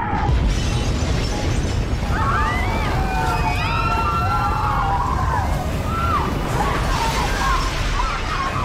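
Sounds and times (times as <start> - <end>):
deep rumbling bomb explosion during air raid: 0.1 - 8.5.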